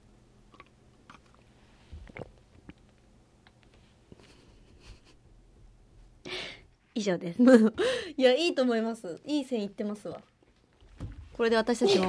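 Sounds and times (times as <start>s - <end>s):
drinking a beverage and swallowing: 0.5s - 3.0s
speech: 7.0s - 10.3s, 11.4s - 12.0s.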